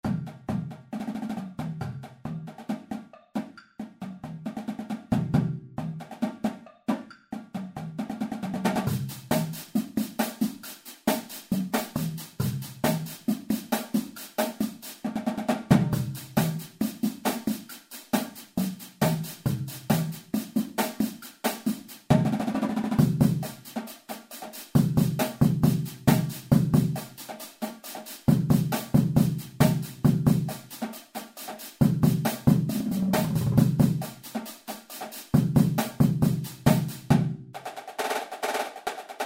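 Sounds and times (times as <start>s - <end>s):
drumline playing: 0.0s - 39.2s.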